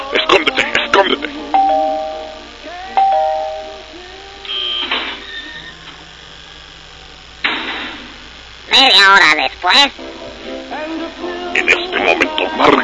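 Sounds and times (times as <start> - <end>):
speech: 0.1 - 1.1, 8.7 - 10.1, 11.6 - 12.8
doorbell chime: 1.6 - 2.4, 3.0 - 3.8.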